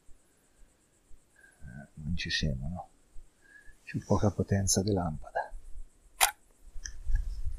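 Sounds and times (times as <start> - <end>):
speech: 2.1 - 2.9, 3.9 - 5.3
camera shutter click: 6.2 - 6.4.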